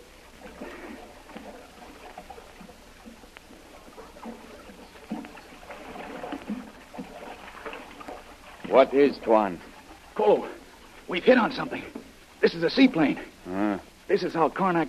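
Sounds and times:
water splashing from someone swimming from a canoe to a covered boat: 0:00.0 - 0:13.4
speech: 0:08.8 - 0:14.8.

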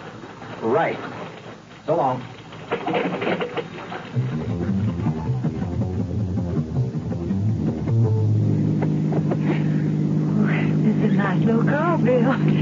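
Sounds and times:
speech: 0:00.6 - 0:01.2, 0:01.8 - 0:03.4
car engine droning while driving: 0:04.1 - 0:12.6.

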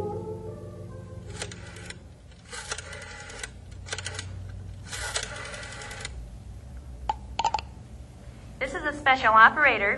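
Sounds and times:
old rotary telephone dial being turned, clicking and whirring: 0:01.3 - 0:06.2
person speaking: 0:08.6 - 0:09.9.

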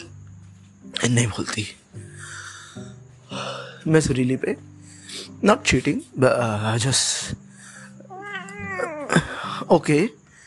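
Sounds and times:
speech: 0:01.0 - 0:07.4, 0:09.7 - 0:10.2
cat meowing: 0:08.1 - 0:09.4.

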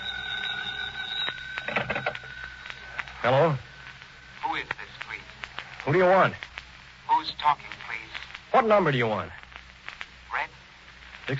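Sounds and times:
telephone ringing with a shrill bell tone: 0:01.6 - 0:02.3
speech: 0:03.2 - 0:03.7, 0:05.8 - 0:06.5, 0:07.2 - 0:07.8, 0:08.5 - 0:09.4.

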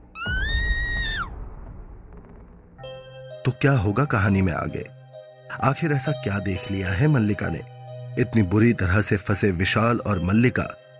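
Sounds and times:
woman screaming inside a car stalled with water in its engine: 0:00.2 - 0:01.3
speech: 0:03.4 - 0:05.0, 0:05.6 - 0:10.8.

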